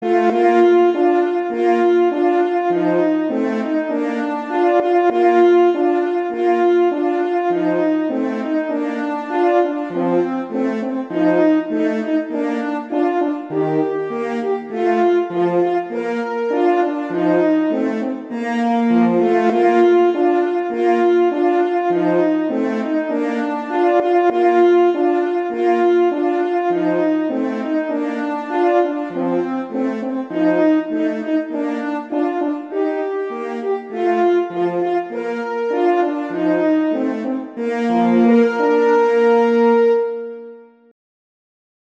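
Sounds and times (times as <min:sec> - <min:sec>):
two horns playing a Christmas horn duet: 0:00.0 - 0:40.7.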